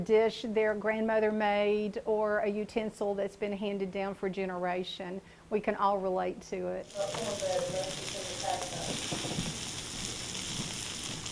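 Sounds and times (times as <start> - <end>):
speech: 0.0 - 8.1
pork tenderloins with green beans and apples sizzling in a cast iron skillet: 6.8 - 11.3.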